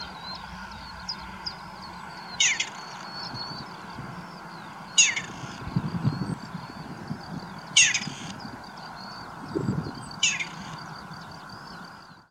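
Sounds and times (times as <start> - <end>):
partridge: 0.0 - 6.9, 7.6 - 9.3, 10.1 - 10.8.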